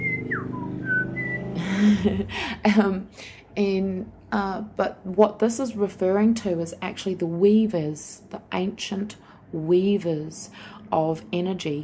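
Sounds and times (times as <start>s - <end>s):
person whistling an imitation of a tui's call: 0.0s - 1.5s
speech: 1.8s - 11.8s.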